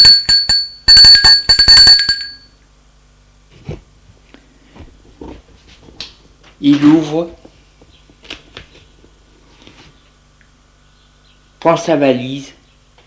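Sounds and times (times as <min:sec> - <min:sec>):
doorbell ringing at a residence: 0:00.0 - 0:02.6
speech: 0:06.6 - 0:07.4, 0:11.6 - 0:12.6.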